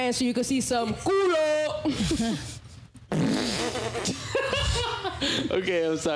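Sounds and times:
speech: 0:00.0 - 0:06.1
mouth-made fart noises: 0:03.0 - 0:04.2
laughter: 0:03.5 - 0:05.7.

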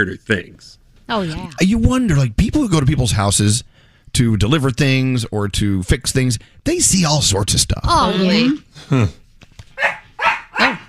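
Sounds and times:
speech: 0:00.0 - 0:09.2
dogs barking: 0:09.8 - 0:10.8.

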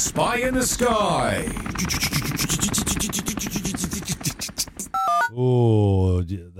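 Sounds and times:
helicopter rotor sound effect chopping: 0:00.0 - 0:05.0
speech: 0:00.1 - 0:02.8, 0:05.3 - 0:06.5
brief electronic tone: 0:05.0 - 0:05.4.

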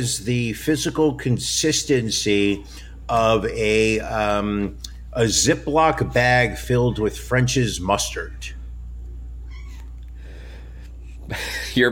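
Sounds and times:
speech: 0:00.0 - 0:08.6, 0:11.3 - 0:11.9
steady low hum: 0:00.0 - 0:11.9
cat meowing behind a closed door: 0:09.4 - 0:10.0.

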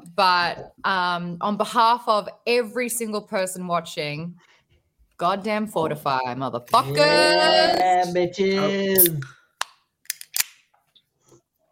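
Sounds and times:
speech: 0:00.2 - 0:04.5, 0:05.2 - 0:09.4
aluminum drink can cracked open: 0:10.1 - 0:10.7.

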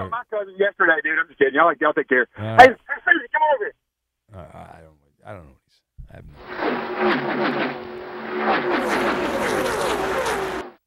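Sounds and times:
speech: 0:00.0 - 0:07.8
NASCAR race car engine roaring past: 0:06.4 - 0:10.8.

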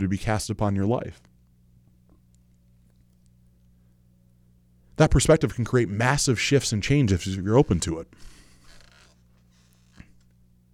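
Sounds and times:
speech: 0:00.0 - 0:01.3, 0:05.0 - 0:08.3
squeaky chair creaking: 0:07.6 - 0:10.3.

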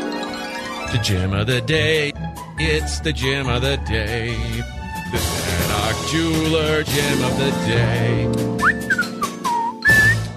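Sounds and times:
speech: 0:00.9 - 0:08.6
man whistling a short wandering tune: 0:08.6 - 0:10.3.

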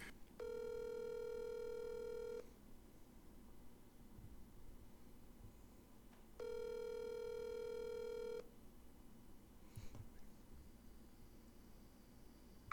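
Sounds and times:
telephone call ringback tones ringing out toward voicemail: 0:00.4 - 0:02.4, 0:06.4 - 0:08.4.

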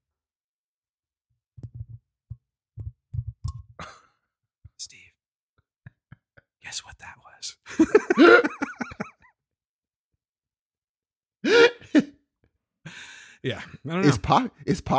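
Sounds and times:
person whispering into a microphone in ASMR style: 0:04.8 - 0:05.2, 0:06.6 - 0:07.6
speech: 0:04.8 - 0:05.2, 0:06.7 - 0:08.6, 0:13.4 - 0:14.9
laughter: 0:07.7 - 0:09.2.

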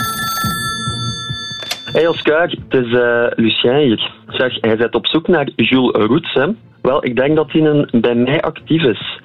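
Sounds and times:
office telephone ringing with a high electronic tone: 0:00.0 - 0:02.3
speech: 0:02.0 - 0:09.2.

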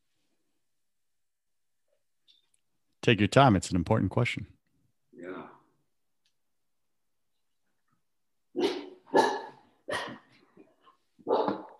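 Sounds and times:
speech: 0:03.1 - 0:04.6
female dog barking: 0:08.6 - 0:09.6, 0:11.3 - 0:11.7.

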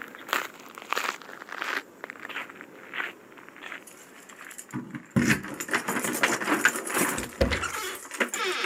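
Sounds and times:
crunching footsteps walking up a path: 0:00.0 - 0:05.2
keys jangling: 0:03.9 - 0:08.5.

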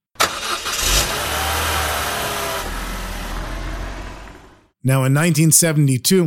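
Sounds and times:
car engine starting and driving off: 0:00.2 - 0:04.7
speech: 0:04.8 - 0:06.2.

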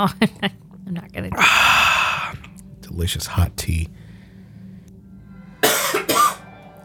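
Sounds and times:
speech: 0:00.0 - 0:01.7, 0:03.0 - 0:04.0
harsh coughs: 0:05.6 - 0:06.4.

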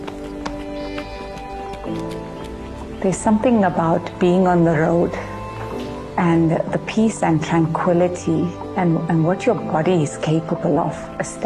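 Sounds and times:
footsteps echoing on a hard street: 0:00.0 - 0:06.2
speech: 0:03.0 - 0:05.2, 0:06.2 - 0:11.4.

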